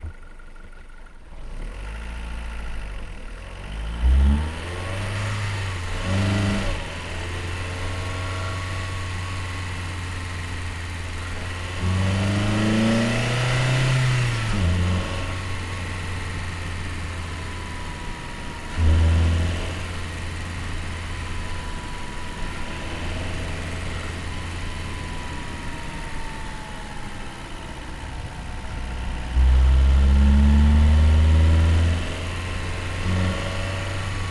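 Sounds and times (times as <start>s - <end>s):
VW Polo engine stopping: 0.0s - 34.2s
VW Polo driving fast, heard onboard: 3.9s - 34.2s.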